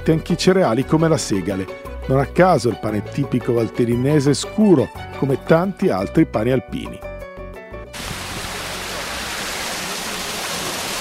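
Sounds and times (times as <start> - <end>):
speech: 0.0 - 7.1
rushing water at a water mill: 8.0 - 10.9.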